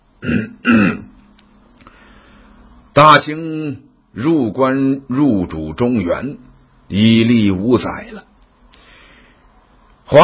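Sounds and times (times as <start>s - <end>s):
speech: 0.2s - 1.0s, 3.0s - 8.3s
man clearing his throat: 0.2s - 1.1s.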